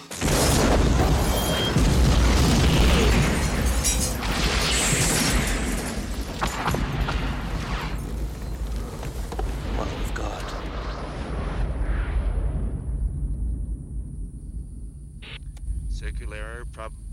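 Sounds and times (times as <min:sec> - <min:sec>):
house exploding in an action film: 0:00.0 - 0:13.8.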